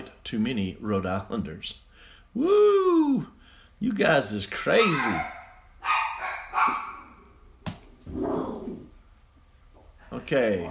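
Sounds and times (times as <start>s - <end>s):
speech: 0.2s - 5.4s, 10.1s - 10.6s
dogs barking: 4.7s - 7.3s.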